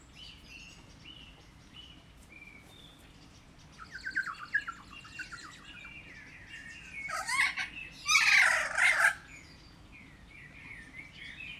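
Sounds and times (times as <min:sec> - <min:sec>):
captive kea calling and screeching in a zoo: 0:07.1 - 0:09.2.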